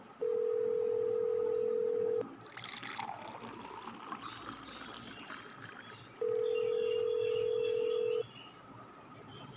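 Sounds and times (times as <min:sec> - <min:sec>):
telephone ringback tones: 0:00.2 - 0:02.2, 0:06.3 - 0:08.2.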